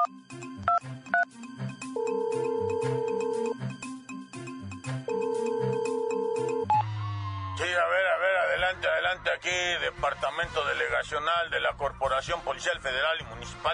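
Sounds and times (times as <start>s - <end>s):
music: 0.0s - 13.7s
telephone ringing after dialing a police delegation office in Mexico: 2.0s - 3.6s, 5.1s - 6.8s
speech: 9.4s - 13.7s.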